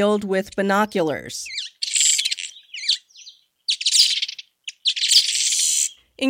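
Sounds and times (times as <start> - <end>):
speech: 0.0 - 1.6
village weaver singing buzzy chatter of chirps and rattling notes: 1.4 - 6.0.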